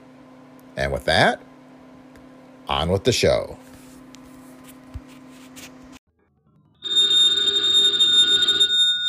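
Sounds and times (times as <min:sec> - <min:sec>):
speech: 0:00.8 - 0:01.5, 0:02.7 - 0:03.7
old-fashioned telephone bell ringing: 0:06.8 - 0:09.0.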